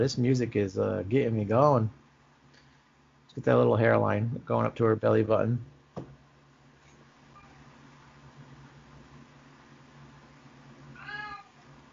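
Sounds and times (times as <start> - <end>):
speech: 0.0 - 2.0, 3.4 - 6.1
steady low mechanical hum: 0.0 - 11.9
cat meowing: 11.0 - 11.7.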